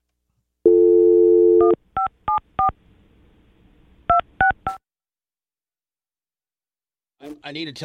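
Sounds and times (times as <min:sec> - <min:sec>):
phone dial tone: 0:00.7 - 0:01.8
speech: 0:07.4 - 0:07.8.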